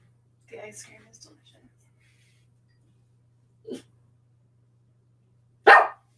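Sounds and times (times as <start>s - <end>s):
speech: 0.5s - 1.8s
dog barking: 5.7s - 6.1s.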